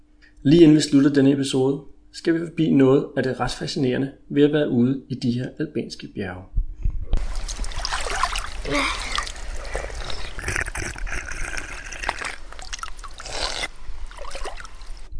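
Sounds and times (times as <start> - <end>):
speech: 0.4 - 6.5
mountain spring water running: 7.2 - 10.4, 11.8 - 15.1.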